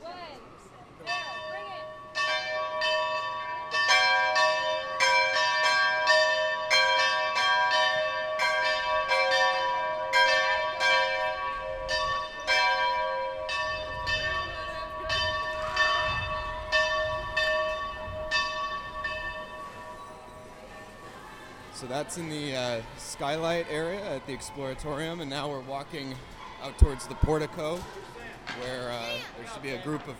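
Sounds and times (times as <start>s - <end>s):
large bell ringing in a skylight area: 1.0s - 21.1s
speech: 22.1s - 28.0s, 28.6s - 30.1s.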